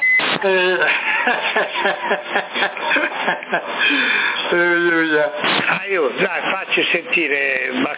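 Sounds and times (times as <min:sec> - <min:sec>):
electronic roger beeps on a CB radio transmission in Sassari: 0:00.0 - 0:00.4
laughter: 0:00.2 - 0:05.3
speech: 0:00.4 - 0:07.9.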